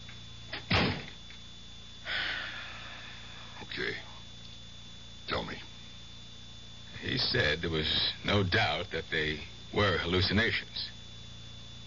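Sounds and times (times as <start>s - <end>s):
door swinging and thudding shut: 0.5s - 1.2s
speech: 7.1s - 11.0s.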